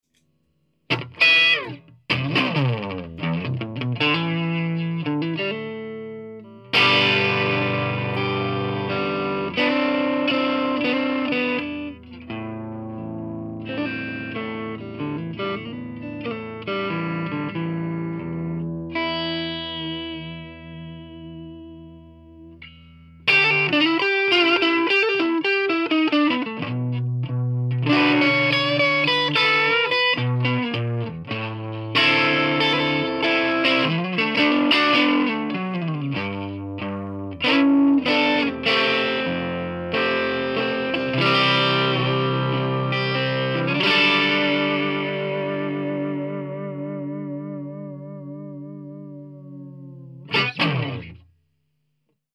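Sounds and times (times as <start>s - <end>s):
overdriven Strat electric guitar: 0.8s - 51.4s.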